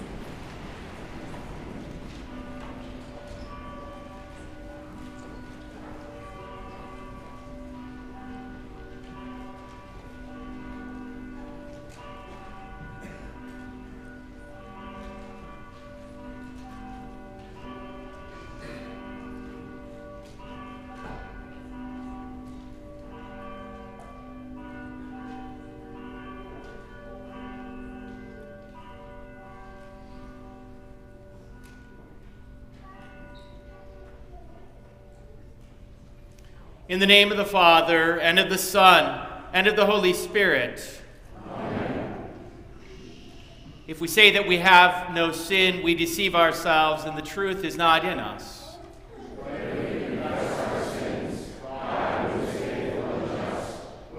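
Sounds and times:
church bells pealing: 0.0 - 54.1
speech: 36.9 - 41.0, 44.0 - 48.6.

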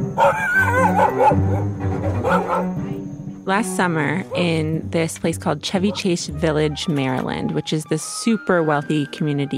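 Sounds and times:
speech: 0.2 - 1.8, 3.5 - 9.5
golden doodle barking and yelping at a dog park in Chevy Chase Village Maryland: 0.2 - 2.8.

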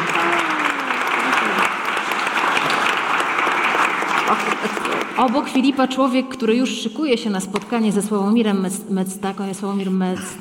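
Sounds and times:
sustained applause from a large audience: 0.0 - 5.8
speech: 4.3 - 10.3.

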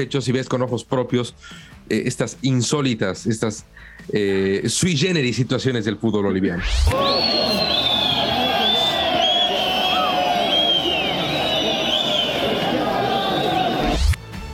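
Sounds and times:
speech: 0.0 - 8.2
stadium crowd of transport union workers whistling at a football match: 6.6 - 14.2.

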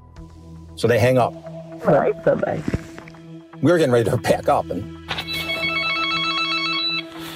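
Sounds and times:
speech: 0.8 - 2.8, 3.6 - 5.0
telephone ringing with a buzzing electronic tone: 5.2 - 7.1.

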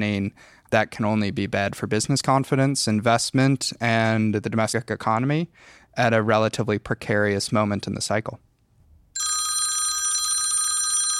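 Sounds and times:
speech: 0.0 - 8.5
telephone bell ringing for an incoming call: 9.2 - 11.1.

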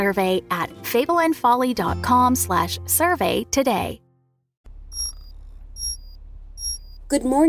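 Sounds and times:
speech: 0.0 - 4.0, 7.1 - 7.4
steady low hum: 4.7 - 7.3
electronic chimes of an internal conduction alarm: 4.9 - 7.1.

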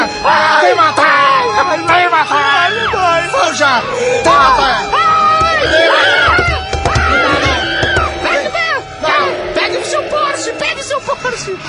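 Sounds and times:
voices shouting: 0.0 - 11.6
speech: 0.2 - 1.0
horses whinnying: 5.6 - 11.0.

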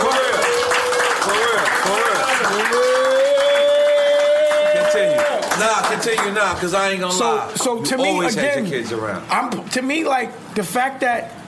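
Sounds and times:
crowd applauding and cheering: 0.0 - 6.6
speech: 6.0 - 11.4.

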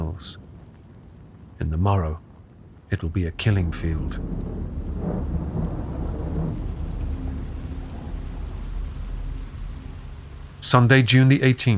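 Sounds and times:
heavy rain: 0.0 - 11.7
thunder rumbling: 0.0 - 11.7
speech: 0.2 - 0.4, 1.6 - 2.2, 2.9 - 5.7, 10.6 - 11.7.

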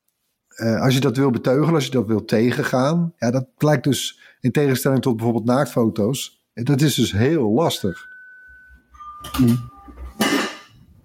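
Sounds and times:
speech: 0.5 - 8.1, 9.2 - 9.7
doorbell ringing: 7.8 - 10.7.

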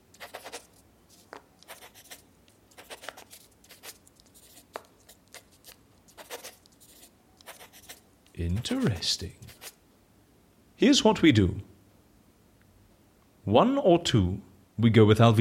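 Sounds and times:
pen writing by hand on paper in an office: 0.1 - 9.8
speech: 8.4 - 9.5, 10.8 - 11.7, 13.5 - 15.3.

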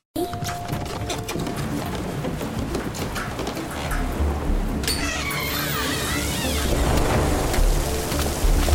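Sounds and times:
heavy rain pouring down: 0.6 - 8.7.

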